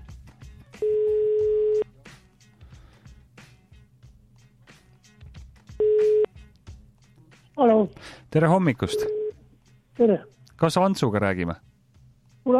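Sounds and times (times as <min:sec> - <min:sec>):
telephone ringback tone: 0:00.8 - 0:01.8, 0:05.8 - 0:06.3, 0:08.9 - 0:09.4
speech: 0:08.4 - 0:09.2, 0:10.0 - 0:11.7.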